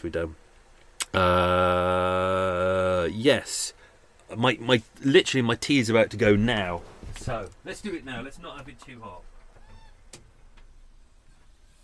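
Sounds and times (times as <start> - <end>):
speech: 0.0 - 0.5, 1.1 - 9.3
nasal bird call, possibly waterfowl: 9.4 - 10.2.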